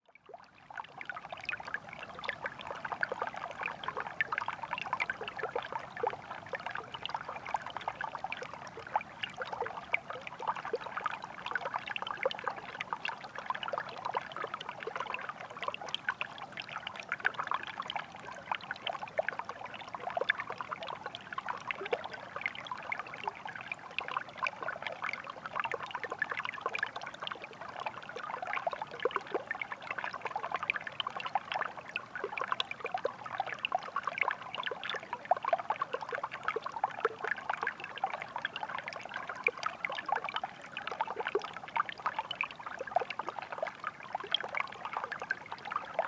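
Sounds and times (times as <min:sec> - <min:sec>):
icy stream flowing in Mont Tremblant National Park: 0:00.5 - 0:46.0.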